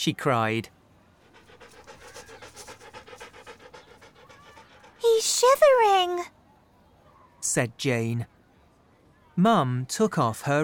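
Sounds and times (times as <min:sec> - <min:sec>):
speech: 0:00.0 - 0:00.8, 0:05.4 - 0:06.4, 0:07.4 - 0:08.3, 0:09.4 - 0:10.6
small dog panting: 0:01.2 - 0:06.3.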